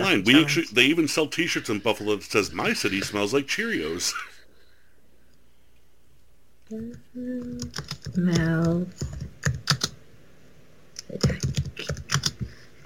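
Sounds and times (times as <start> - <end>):
speech: 0.1 - 4.3, 6.7 - 9.2
computer keyboard typing: 6.8 - 10.0, 11.0 - 12.5.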